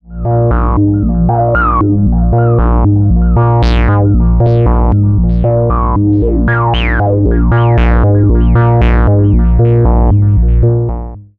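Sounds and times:
synthesizer through space delay effect: 0:00.0 - 0:11.1.

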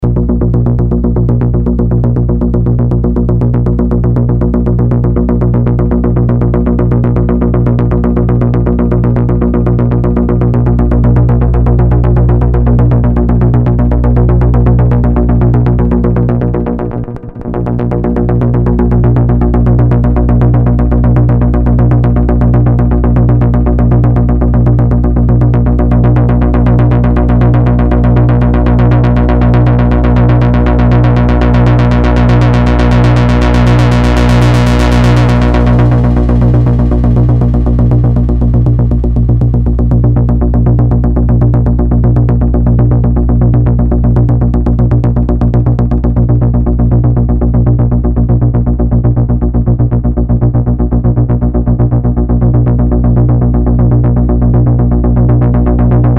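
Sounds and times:
deep bass sequence: 0:00.0 - 0:56.1.

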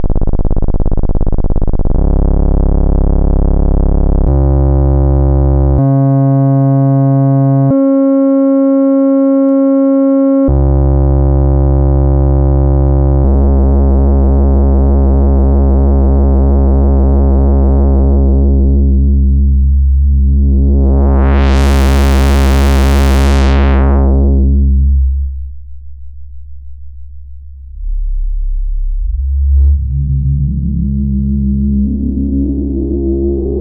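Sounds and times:
analogue synthesizer oscillator pulse wave with modulation and filter: 0:00.0 - 0:25.7, 0:27.5 - 0:33.5.

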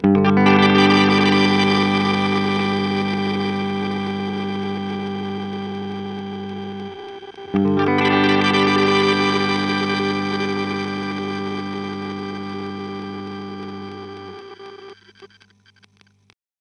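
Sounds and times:
Chase Bliss Blooper reverse pitch scrambled loop: 0:00.6 - 0:15.5.

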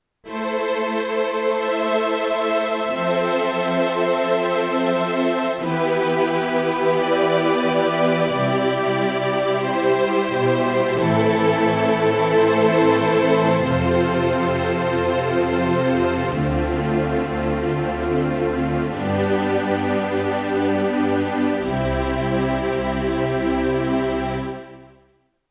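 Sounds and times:
Alesis Recital 61 keyboard strings: 0:00.3 - 0:25.0.

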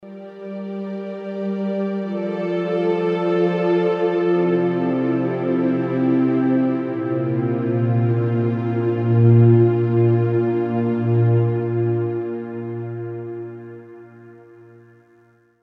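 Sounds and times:
studio string ensemble playing: 0:00.2 - 0:14.9.

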